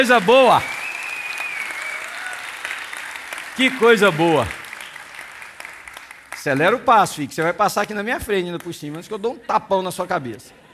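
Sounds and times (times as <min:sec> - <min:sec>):
speech: 0:00.0 - 0:00.8, 0:03.6 - 0:04.6, 0:06.4 - 0:10.6
audience applause: 0:00.0 - 0:07.9.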